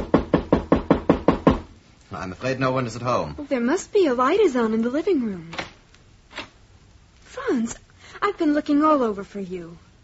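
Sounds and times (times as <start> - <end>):
knocking on a door: 0.0 - 1.7
speech: 2.2 - 5.6, 7.5 - 9.9.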